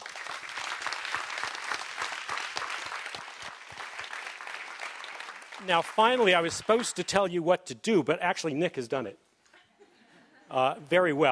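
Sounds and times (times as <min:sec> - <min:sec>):
sustained audience applause of many hands clapping: 0:00.0 - 0:07.2
speech: 0:05.6 - 0:09.2, 0:10.5 - 0:11.3.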